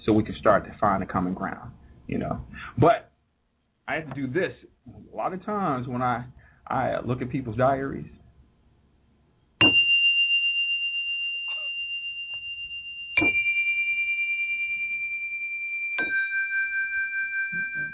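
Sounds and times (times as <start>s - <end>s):
speech: 0.1s - 3.1s, 3.9s - 8.2s
small relaxing chimes ringing: 9.6s - 17.9s.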